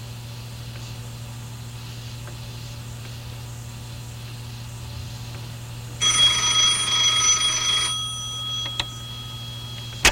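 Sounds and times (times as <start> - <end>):
steady low hum: 1.7 - 10.0
telephone ringing in a buzzing burst: 6.0 - 10.0.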